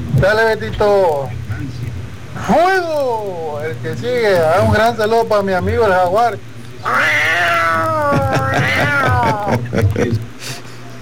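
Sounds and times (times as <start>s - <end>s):
hum: 0.0s - 11.0s
speech: 0.2s - 7.2s, 8.1s - 10.3s
cat meowing: 6.8s - 9.6s
laughter: 7.9s - 11.0s.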